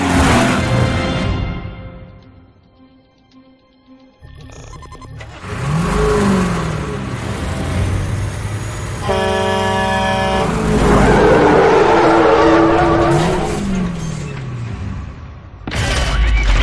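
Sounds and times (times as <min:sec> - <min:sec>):
Camaro engine revving hard and accelerating: 0:00.0 - 0:01.2, 0:05.1 - 0:15.6
rush of road noise: 0:00.0 - 0:01.7, 0:05.2 - 0:15.7
sustained horn-like blare: 0:09.0 - 0:13.6.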